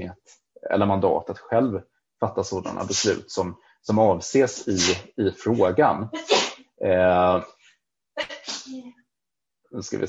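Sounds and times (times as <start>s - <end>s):
speech: 0.0s - 7.6s, 8.2s - 9.0s, 9.7s - 10.0s
person sneezing: 4.6s - 5.1s, 6.3s - 7.3s
laughter: 4.6s - 5.8s.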